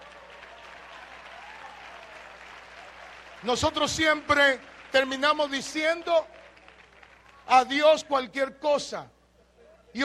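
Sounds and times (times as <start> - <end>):
audience applauding: 0.0 - 7.5
speech: 3.4 - 6.4, 7.5 - 9.2.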